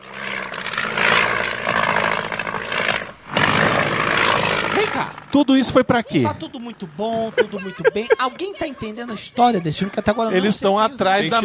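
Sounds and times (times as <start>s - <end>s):
herd of elephants in a film scene roaring and rumbling: 0.0s - 8.6s
speech: 5.0s - 11.4s
laughter: 7.0s - 10.6s.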